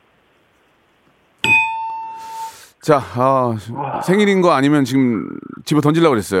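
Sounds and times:
bright metallic ding imitating a streaming service intro sound: 1.4 - 2.6
speech: 2.9 - 6.3.

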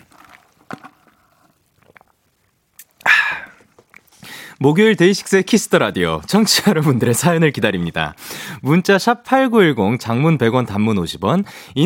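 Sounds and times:
quiet mouth and handling noises: 0.0 - 7.6
speech: 4.6 - 11.8.

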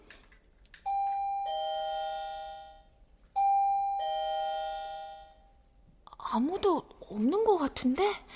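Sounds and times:
doorbell two-tone ding-dong chime: 0.9 - 5.4
speech: 6.3 - 8.3.

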